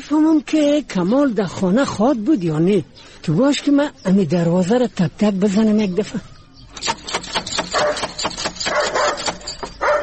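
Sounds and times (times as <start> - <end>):
faint noise: 0.0 - 10.0
speech: 0.1 - 7.0
dog barking in rapid sharp yaps: 7.7 - 10.0.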